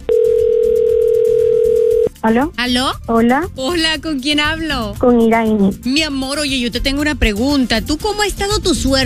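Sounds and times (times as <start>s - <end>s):
loud continuous single telephone line tone: 0.1s - 2.1s
speech: 2.2s - 9.0s.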